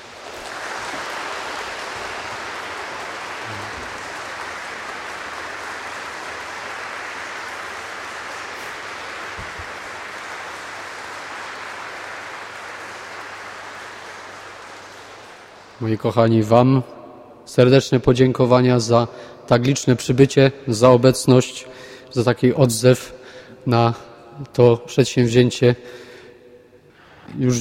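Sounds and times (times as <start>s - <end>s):
audience applause after a concert: 0.0s - 16.0s
speech: 15.8s - 26.1s, 27.4s - 27.5s.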